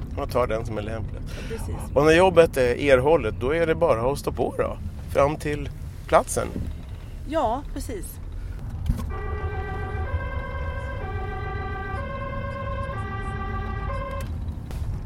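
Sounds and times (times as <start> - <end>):
low engine and road rumble inside a Volvo V70: 0.0 - 15.0
speech: 0.2 - 6.7, 7.3 - 8.2
two-tone ambulance siren heard muffled from inside a Volvo V70: 9.0 - 14.6.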